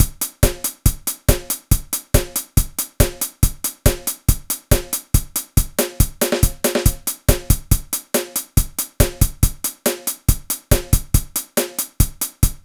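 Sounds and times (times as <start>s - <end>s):
square wave beat patterns: 0.0s - 12.6s.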